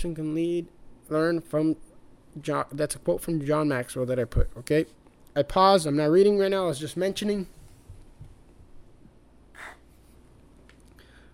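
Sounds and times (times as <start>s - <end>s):
speech: 0.0s - 7.6s
faint hiss: 0.0s - 11.3s
person breathing heavily into a microphone: 10.9s - 11.3s.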